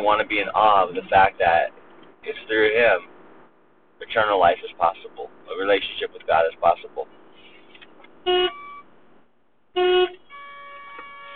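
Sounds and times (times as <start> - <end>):
speech: 0.0 - 3.1, 4.0 - 7.2, 8.2 - 8.6, 9.8 - 10.2
car horns honking in traffic: 7.1 - 9.0, 9.7 - 11.3.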